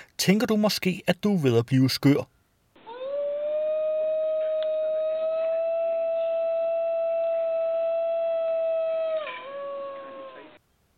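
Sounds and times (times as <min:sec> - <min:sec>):
speech: 0:00.2 - 0:02.4
New Guinea singing dog Canis dingo halstromi howling: 0:02.8 - 0:10.6.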